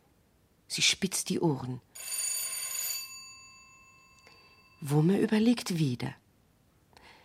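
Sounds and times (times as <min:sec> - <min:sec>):
speech: 0:00.7 - 0:02.2, 0:04.8 - 0:06.2
bright bell ringing: 0:02.0 - 0:05.3.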